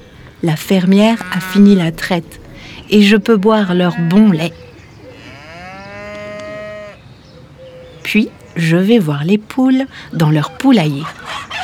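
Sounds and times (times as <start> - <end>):
cow mooing in a barn on a farm: 0.0 - 7.1
speech: 0.4 - 4.6, 8.1 - 11.3.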